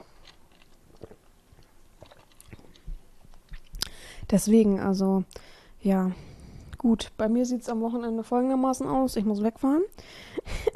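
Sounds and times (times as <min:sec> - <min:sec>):
person sipping iced coffee: 0:00.0 - 0:04.1
speech: 0:04.3 - 0:10.3.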